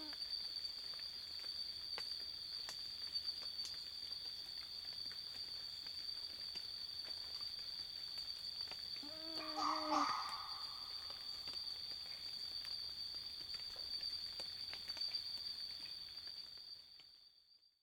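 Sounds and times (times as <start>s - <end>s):
continuous high-pitched insect hum: 0.0s - 17.8s
red fox whining cry: 9.0s - 11.1s.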